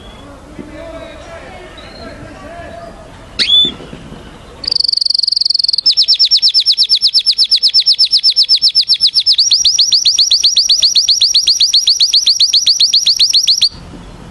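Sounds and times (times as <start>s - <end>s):
canary singing: 2.8s - 13.8s.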